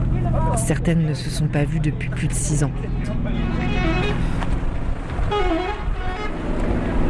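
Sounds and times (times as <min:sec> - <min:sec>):
bus engine idling in Aleppo Syria: 0:00.0 - 0:06.4
street traffic in Aleppo Syria: 0:00.0 - 0:07.0
speech: 0:00.6 - 0:04.3
vehicle horn toots: 0:03.3 - 0:04.4, 0:05.2 - 0:06.4.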